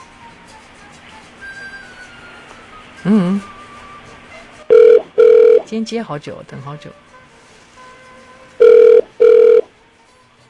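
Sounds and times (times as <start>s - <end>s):
speech: 3.0s - 3.5s, 5.7s - 7.1s
electronic ringback tone from an outgoing phone call: 4.7s - 5.7s, 8.6s - 9.7s.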